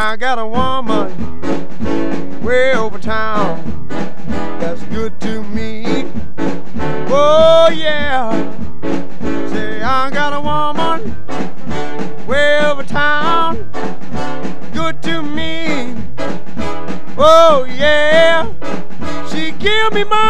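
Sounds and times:
male voice singing energetically on a 1954 rhythm and blues recording: 0:00.0 - 0:01.2, 0:02.4 - 0:03.8, 0:04.5 - 0:06.2, 0:07.0 - 0:08.6, 0:09.4 - 0:11.2, 0:12.2 - 0:13.8, 0:14.7 - 0:16.1, 0:17.2 - 0:18.6, 0:19.2 - 0:20.2
driving rhythm and blues band accompaniment: 0:00.0 - 0:20.2
speech: 0:00.1 - 0:04.1, 0:07.2 - 0:08.6, 0:09.9 - 0:20.2.

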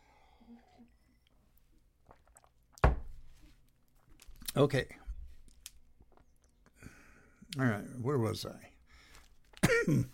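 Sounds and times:
person sipping cranberry raspberry juice: 0:00.3 - 0:02.8
speech: 0:04.6 - 0:05.0, 0:07.6 - 0:08.7, 0:09.8 - 0:10.1.

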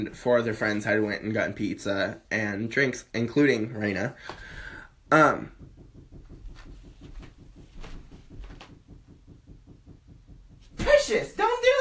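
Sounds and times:
speech: 0:00.0 - 0:04.5, 0:05.1 - 0:05.7
sharp knock like a rap on a wooden door: 0:05.1 - 0:11.7.

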